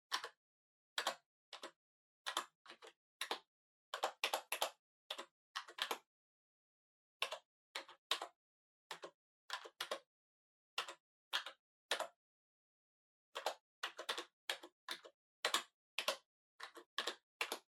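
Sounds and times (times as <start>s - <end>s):
gentle PC keyboard typing heard from far: 0.1s - 0.4s, 1.0s - 6.1s, 7.2s - 10.1s, 10.8s - 12.2s, 13.4s - 17.7s.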